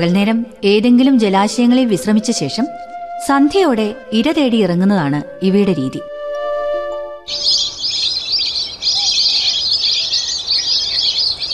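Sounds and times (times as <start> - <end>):
speech: 0.0 - 6.1, 7.3 - 7.6
flock of migratory wild ducks calling and flying overhead: 7.3 - 11.5.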